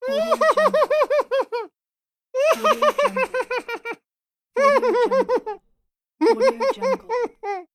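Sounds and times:
cartoon laugh: 0:00.1 - 0:01.7, 0:02.4 - 0:04.0, 0:04.6 - 0:05.6, 0:06.2 - 0:07.7.

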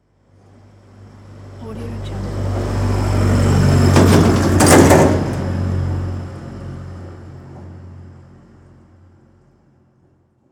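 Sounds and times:
lorry passing by: 0:00.6 - 0:08.8.

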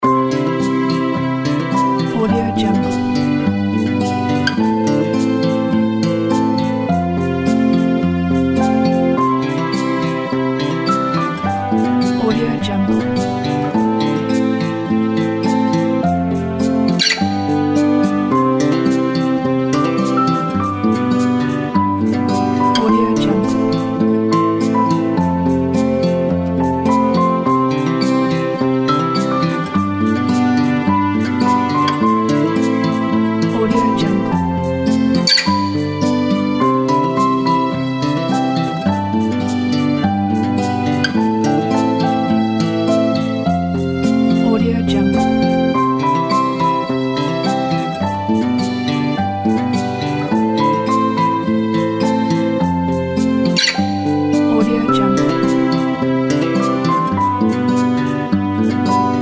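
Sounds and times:
happy relaxed fingerstyle acoustic loop: 0:00.0 - 0:59.2.

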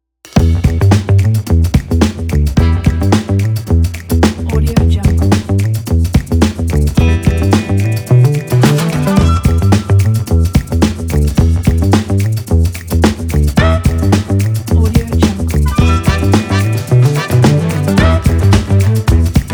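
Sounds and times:
quirky jazz funk music: 0:00.3 - 0:19.5.

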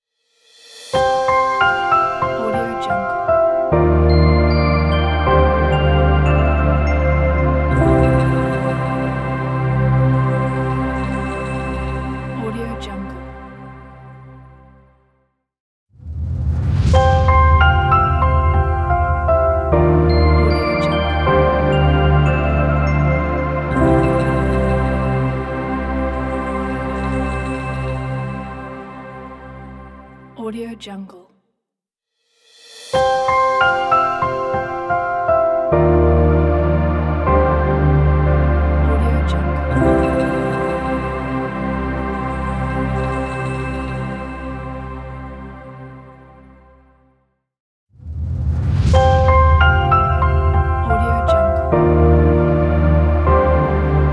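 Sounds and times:
elegant modern piano logo ident: 0:00.6 - 0:12.4, 0:16.0 - 0:28.7, 0:32.6 - 0:45.0, 0:48.0 - 0:54.1.

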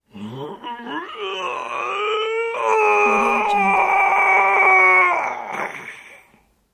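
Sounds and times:
man long exertion groan: 0:00.1 - 0:06.2.

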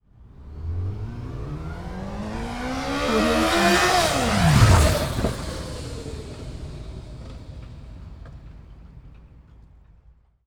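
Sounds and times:
Yamaha FZ8 motorcycle passing by: 0:00.2 - 0:07.6.

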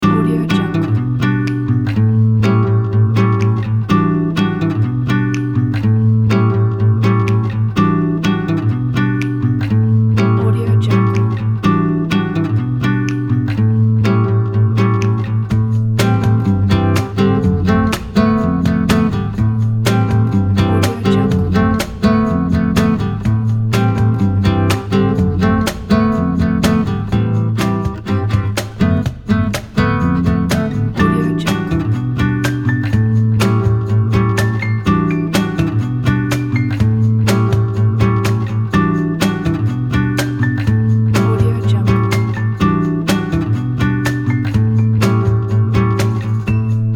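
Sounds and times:
relaxing guitar: 0:00.0 - 0:46.9.

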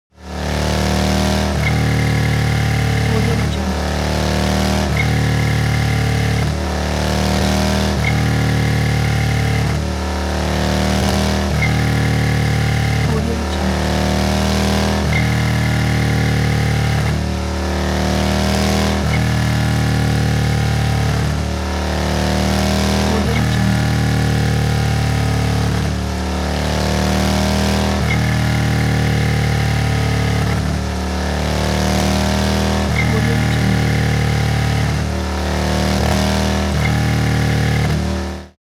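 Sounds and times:
Harley motorcycle revving in short thrusts: 0:00.2 - 0:38.6.

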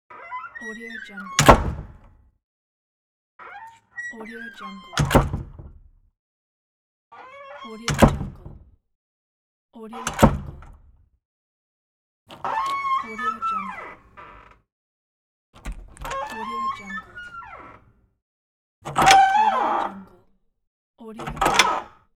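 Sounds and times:
door squeaking: 0:00.1 - 0:02.2, 0:03.4 - 0:05.9, 0:07.1 - 0:08.7, 0:10.0 - 0:10.8, 0:12.3 - 0:14.7, 0:15.6 - 0:18.0, 0:18.8 - 0:20.3, 0:21.2 - 0:22.1.

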